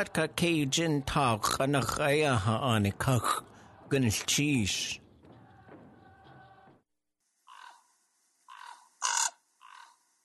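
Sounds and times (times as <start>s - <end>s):
speech: 0.0s - 5.0s
harsh raspy raven squawks: 7.5s - 7.9s, 8.5s - 10.0s.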